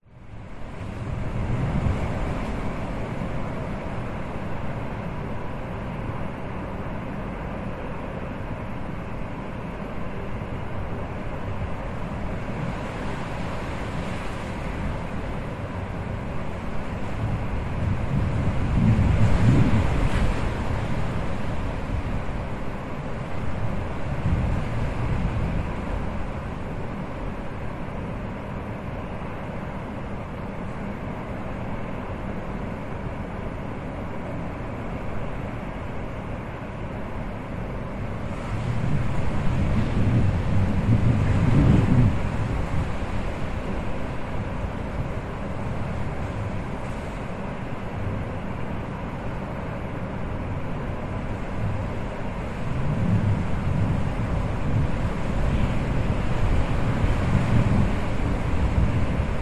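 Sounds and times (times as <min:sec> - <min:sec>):
blustery wind against slightly open window: 0:00.0 - 0:59.4
howling gusts of wind: 0:00.0 - 0:59.4.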